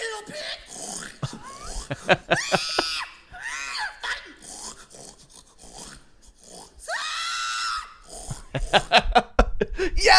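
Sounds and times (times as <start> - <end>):
pigs grunting and snorting: 0.0 - 2.8, 4.1 - 6.9, 7.9 - 8.9
pigs squealing: 0.0 - 8.7
laughter: 1.2 - 3.1, 8.6 - 9.8
speech: 1.9 - 3.0.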